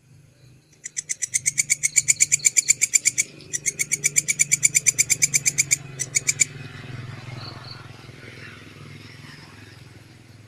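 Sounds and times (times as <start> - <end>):
canary song with rolling trill: 0.4 - 7.8.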